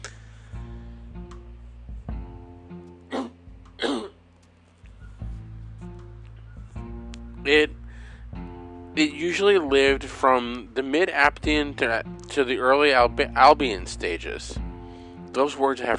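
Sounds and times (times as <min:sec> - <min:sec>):
person coughing from allergy: 0:03.1 - 0:04.2
person sneezing from allergy: 0:03.1 - 0:04.2
speech: 0:07.5 - 0:07.8, 0:09.0 - 0:14.6, 0:15.4 - 0:15.9.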